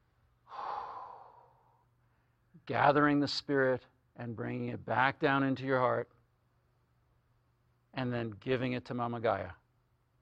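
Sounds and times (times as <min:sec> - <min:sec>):
long faint exhaled breath: 0:00.5 - 0:02.3
speech: 0:02.7 - 0:06.2, 0:07.9 - 0:09.6.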